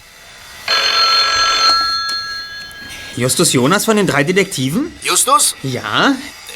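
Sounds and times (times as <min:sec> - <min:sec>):
telephone bell ringing in an office: 0:00.7 - 0:05.3
speech: 0:03.2 - 0:06.4.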